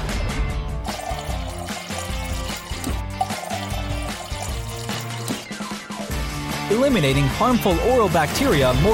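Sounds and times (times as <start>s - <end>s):
loud rhythmic music: 0.0s - 8.9s
water pouring from a smart mouthwash machine: 0.8s - 5.6s
speech: 6.7s - 8.9s.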